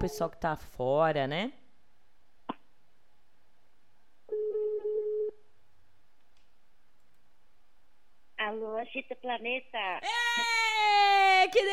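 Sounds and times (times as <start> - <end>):
speech: 0.0 - 1.6, 8.5 - 11.7
low-pitched telephone ringback tone: 4.3 - 5.4
telephone click as a call is placed: 6.2 - 7.2.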